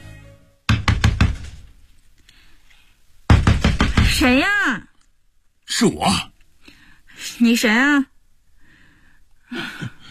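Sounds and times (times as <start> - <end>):
faint sound: 0.0 - 10.0
loud hard knocking on a door late at night: 0.7 - 1.7, 3.3 - 4.4
speech: 4.2 - 4.9, 5.7 - 6.3, 7.2 - 8.1.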